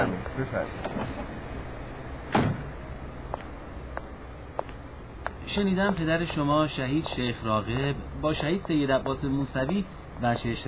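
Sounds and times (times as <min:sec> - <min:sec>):
speech: 0:00.4 - 0:01.2, 0:05.5 - 0:10.6
car door lock engaging thunk: 0:02.3 - 0:02.7.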